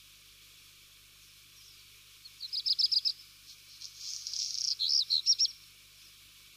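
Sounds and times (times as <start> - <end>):
black redstart calling in crackling buzzy notes: 1.5 - 5.7.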